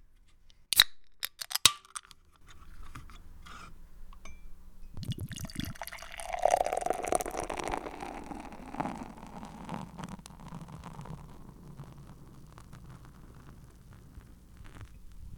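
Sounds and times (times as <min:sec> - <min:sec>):
can and glass clicking and clinking: 0:00.7 - 0:02.2, 0:04.2 - 0:09.6
beer pouring into a glass: 0:05.0 - 0:13.6.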